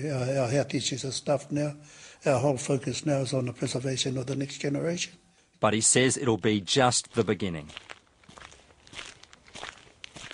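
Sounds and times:
speech: 0.0 - 8.0
footsteps on a rural road in the hills: 7.0 - 10.3.

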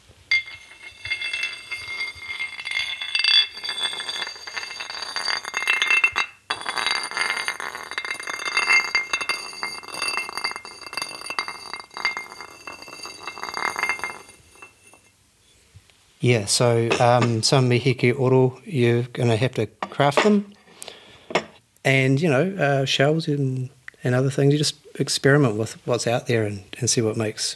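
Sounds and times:
basalt stones from Rēkohu clinking together: 0.3 - 15.1
speech: 16.2 - 20.5, 21.9 - 27.5.

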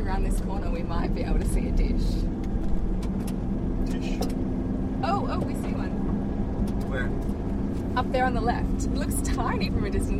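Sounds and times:
car driving along a road toward a radio astronomy observatory: 0.0 - 10.1
speech: 0.1 - 2.4, 5.0 - 6.1, 6.9 - 7.4, 8.0 - 10.1.

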